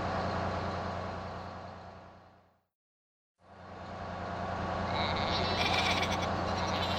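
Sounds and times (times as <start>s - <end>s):
low engine rumble of a stopped bus: 0.0s - 2.6s, 3.4s - 6.9s
sheep bleating on the road: 4.9s - 6.9s.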